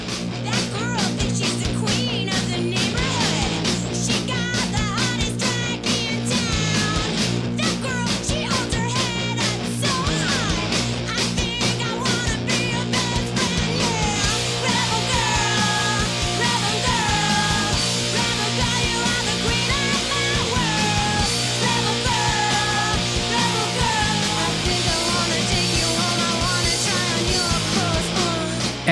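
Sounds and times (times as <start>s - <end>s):
driving distorted guitars: 0.0s - 28.9s
loud dense feminist riot grrrl punk rock track: 0.0s - 28.9s
raw shouted vocals: 11.9s - 28.9s.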